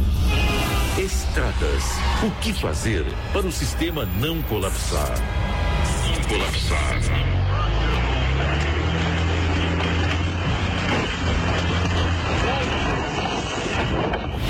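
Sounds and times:
speech: 0:01.0 - 0:08.0
heavy truck rumbling over a rough road: 0:03.2 - 0:14.4.

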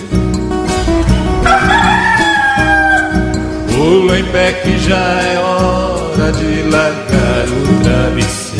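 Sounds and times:
steady sustained low tones: 0:00.3 - 0:06.7
speckled rooster crowing: 0:01.2 - 0:03.7
speech: 0:03.9 - 0:08.4.

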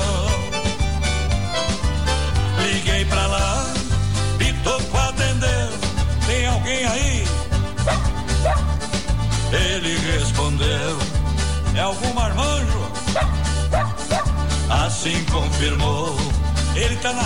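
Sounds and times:
loud busy band music with a heavy steady bass line: 0:00.0 - 0:17.2
dog barks and yips: 0:07.9 - 0:08.7, 0:13.1 - 0:14.4
speech: 0:11.8 - 0:13.4, 0:15.0 - 0:17.2.

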